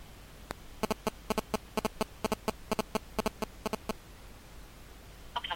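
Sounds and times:
mobile phone electronic key beeps during PIN entry: 0:00.8 - 0:03.9.

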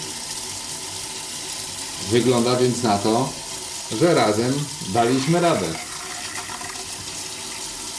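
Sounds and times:
water running from a tap: 0:00.0 - 0:07.9
speech: 0:02.1 - 0:05.9
pipes gurgling: 0:03.4 - 0:07.9.

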